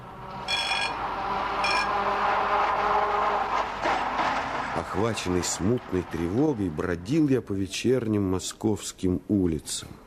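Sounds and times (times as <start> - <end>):
tram rumbling as it pulls away: 0.0 - 8.1
tram bell clanging: 0.4 - 2.0
speech: 5.0 - 10.0.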